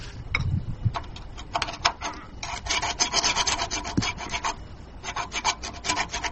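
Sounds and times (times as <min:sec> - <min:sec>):
triangular scraper scraping rust off metal: 0:01.0 - 0:06.3
sandpaper sanding rust off metal: 0:01.8 - 0:06.3.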